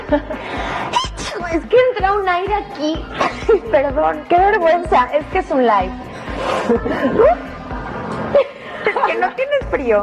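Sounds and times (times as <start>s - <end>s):
laughter: 0.0s - 0.5s, 6.3s - 9.8s
speech: 0.1s - 7.5s, 9.1s - 10.0s
high-pitched sneezes during a live broadcast: 0.9s - 1.5s, 3.1s - 3.5s.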